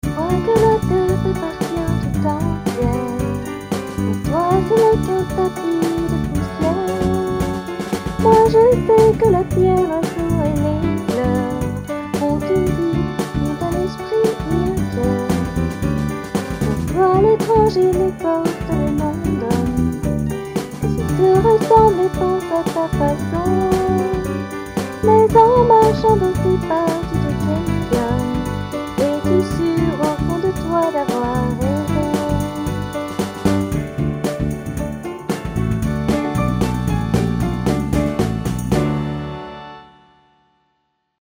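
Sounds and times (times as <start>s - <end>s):
uplifting music: 0.0s - 40.4s.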